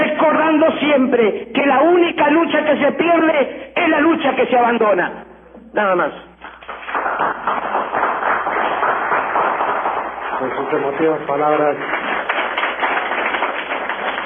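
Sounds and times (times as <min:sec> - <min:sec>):
speech: 0:00.6 - 0:06.3, 0:10.4 - 0:12.0
sustained applause from a large indoor crowd in an auditorium: 0:06.6 - 0:14.2.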